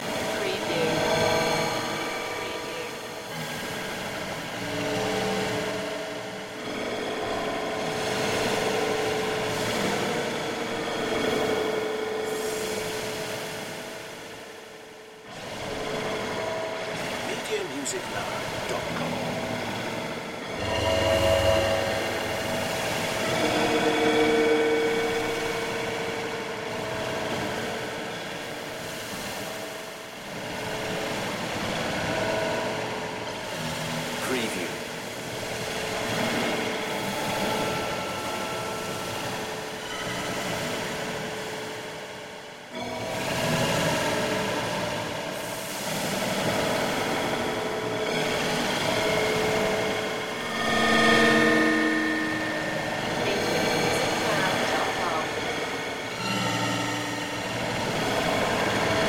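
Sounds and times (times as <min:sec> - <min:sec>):
abstract information waves loop: 0:00.0 - 0:59.0.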